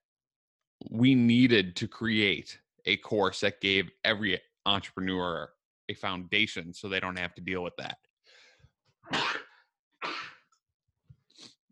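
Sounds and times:
speech: 0.9 - 8.0, 9.0 - 9.4
loud sneeze into microphone: 9.1 - 10.5.

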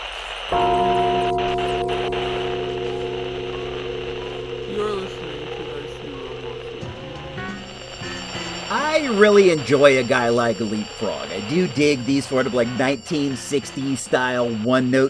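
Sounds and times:
gong being struck: 0.6 - 11.0
speech: 9.0 - 15.0.

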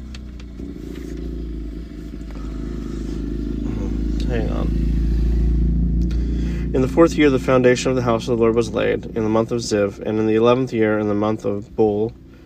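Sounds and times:
loud motorcycle engine passing by: 0.0 - 12.4
speech: 0.6 - 1.0, 6.8 - 12.2.

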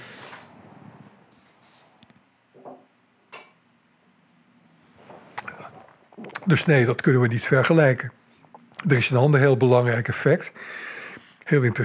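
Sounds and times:
sipping and swallowing water: 5.3 - 6.6
speech: 6.2 - 8.2, 8.8 - 10.9, 11.5 - 11.8.

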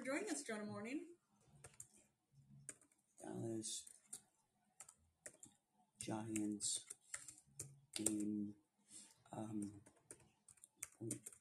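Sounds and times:
speech: 0.1 - 1.2, 3.2 - 4.0, 6.0 - 7.0, 7.6 - 8.6, 9.3 - 9.9, 11.0 - 11.3
typing on a computer keyboard: 1.6 - 2.0, 2.6 - 3.0, 4.8 - 8.5, 9.4 - 11.3.

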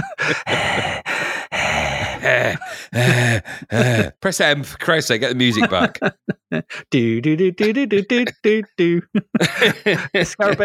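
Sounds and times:
speech: 0.0 - 1.0, 3.0 - 10.6
laughter: 0.0 - 4.2, 5.4 - 6.9, 7.6 - 10.6
person making exaggerated heavy raspy breathing: 0.0 - 4.2, 6.6 - 6.9.

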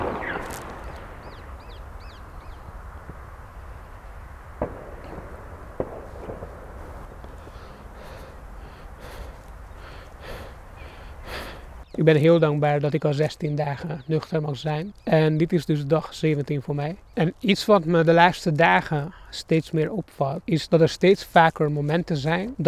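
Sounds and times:
firecrackers exploding outdoors: 0.0 - 9.2
steady background rumble: 0.0 - 18.8
speech: 12.0 - 22.6.

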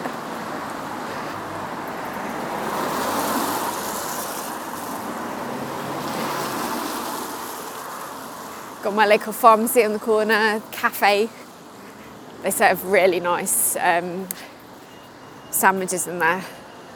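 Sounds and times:
village-centre street ambience rumble and hiss: 0.0 - 16.9
speech: 8.8 - 11.4, 12.4 - 14.5, 15.6 - 16.6.

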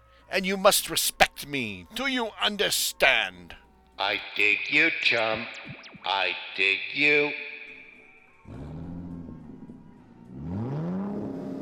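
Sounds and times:
speech: 0.3 - 7.5
fast car engine revving and speeding along the Tamiami Trail: 10.3 - 11.6.

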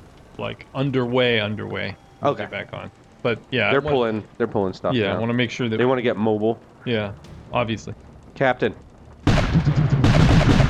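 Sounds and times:
speech: 0.4 - 8.9, 9.5 - 9.8
cannon blasts from a ship: 7.2 - 10.6.

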